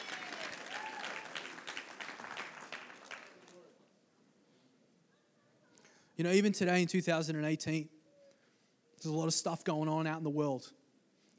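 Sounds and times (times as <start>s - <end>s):
whoops and shouts from the crowd: 0.0s - 1.6s
crowd clapping and applauding: 0.0s - 3.8s
speech: 6.2s - 8.0s, 9.0s - 10.8s.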